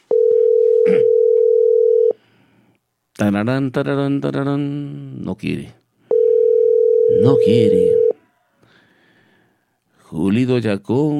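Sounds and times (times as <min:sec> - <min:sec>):
telephone ringback tone: 0:00.1 - 0:02.2, 0:06.1 - 0:08.2
speech: 0:03.2 - 0:05.8, 0:07.1 - 0:08.1, 0:10.1 - 0:11.1.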